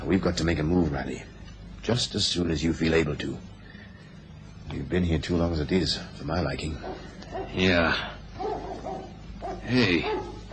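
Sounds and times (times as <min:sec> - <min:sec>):
speech: 0:00.0 - 0:03.5, 0:04.7 - 0:08.1, 0:09.7 - 0:10.2
faint hum: 0:00.0 - 0:10.5
hound barking in the distance: 0:06.8 - 0:07.7, 0:08.4 - 0:10.5.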